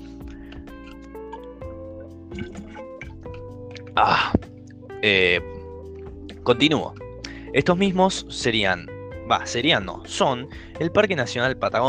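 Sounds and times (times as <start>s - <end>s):
person sipping water: 0.0s - 4.9s
person swallowing water: 0.3s - 4.9s
speech: 2.3s - 2.9s, 4.0s - 4.4s, 5.0s - 5.5s, 6.4s - 11.8s.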